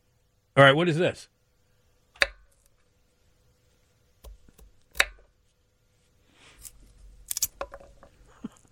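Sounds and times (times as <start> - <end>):
speech: 0.6 - 1.3
gory foley chopping like fingers being cut off: 2.2 - 2.6, 4.2 - 5.3.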